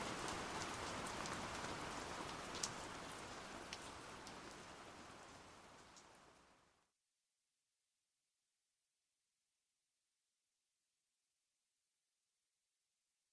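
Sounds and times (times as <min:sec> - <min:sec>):
gentle rain falling: 0:00.0 - 0:06.9.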